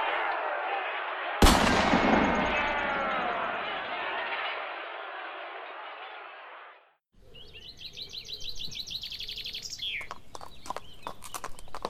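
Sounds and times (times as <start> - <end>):
commotion of troops clashing: 0.0 - 6.6
gunfire crack with rumbling echo during a battle: 1.4 - 4.0.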